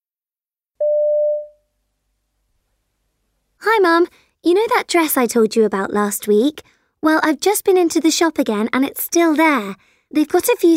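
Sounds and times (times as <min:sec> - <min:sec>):
steady telephone tone before a phone call: 0:00.8 - 0:01.5
speech: 0:03.6 - 0:10.7.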